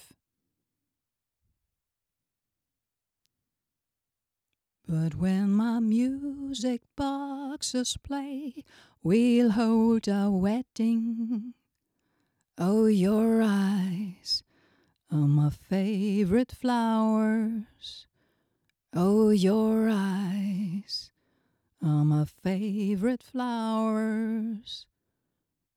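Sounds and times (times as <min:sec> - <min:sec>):
singing: 0:04.9 - 0:11.6, 0:12.6 - 0:14.5, 0:15.1 - 0:18.1, 0:18.9 - 0:21.1, 0:21.8 - 0:24.9.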